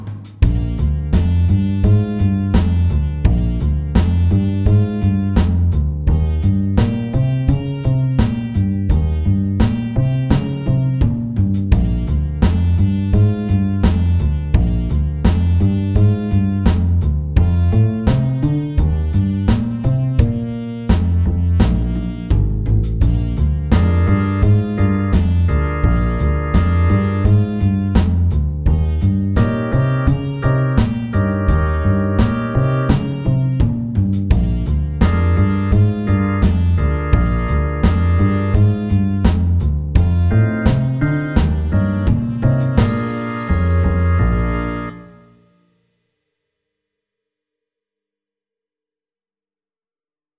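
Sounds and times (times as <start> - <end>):
walking bass line: 0.4 - 45.0.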